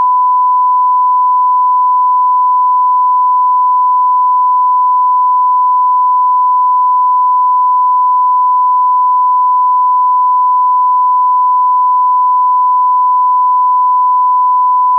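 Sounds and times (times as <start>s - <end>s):
1 kHz mono sine tone: 0.0s - 14.9s.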